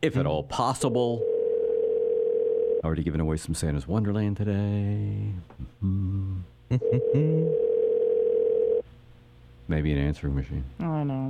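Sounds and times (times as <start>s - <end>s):
speech: 0.0s - 1.4s, 2.8s - 7.7s, 9.7s - 11.2s
phone line's ringback tone on an outgoing call: 1.2s - 2.8s, 6.8s - 8.8s.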